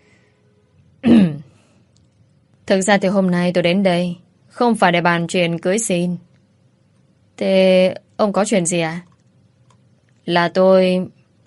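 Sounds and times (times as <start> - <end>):
man clearing his throat: 1.0 - 1.5
speech: 2.7 - 6.3, 7.4 - 9.1, 10.3 - 11.2.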